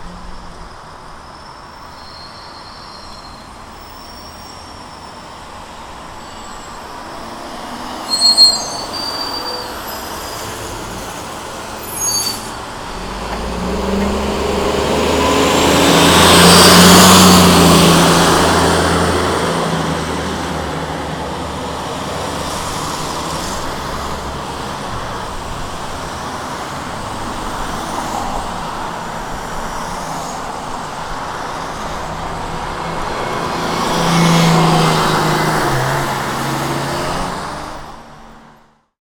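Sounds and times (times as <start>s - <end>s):
bus passing bus stop: 0.0s - 38.8s
street traffic: 0.0s - 38.8s.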